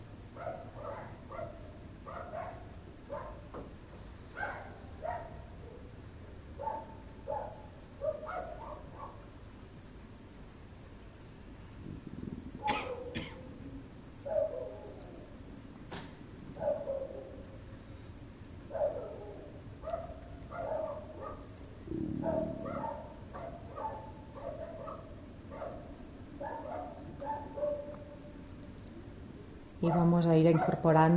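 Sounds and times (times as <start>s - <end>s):
low hum: 0.0s - 31.1s
dog barking: 0.3s - 3.5s, 4.3s - 6.0s, 6.6s - 9.3s, 12.6s - 13.4s, 14.2s - 15.2s, 16.5s - 17.6s, 18.7s - 28.3s, 29.8s - 30.9s
speech: 29.9s - 31.1s.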